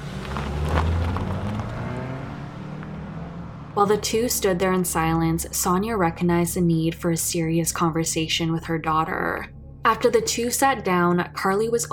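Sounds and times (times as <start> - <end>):
car engine rumbling as car pulls off and drives away: 0.0 - 4.6
speech: 3.8 - 11.9.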